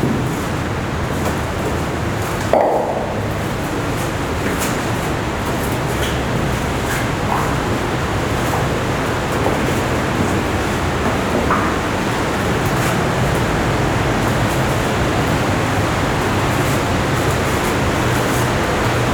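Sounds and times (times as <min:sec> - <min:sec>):
underground river roaring: 0:00.0 - 0:19.1.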